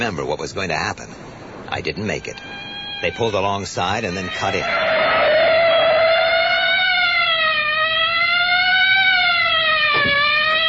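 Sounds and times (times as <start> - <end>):
speech: 0.0 - 4.9
police car siren wailing: 2.2 - 10.6
low thump: 9.9 - 10.2.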